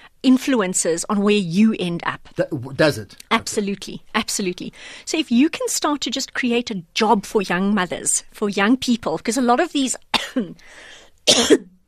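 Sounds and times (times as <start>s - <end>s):
speech: 0.2s - 11.7s
soft breathy inhale: 4.7s - 5.1s, 10.6s - 11.2s
harsh winter cough: 10.1s - 10.6s, 11.3s - 11.8s.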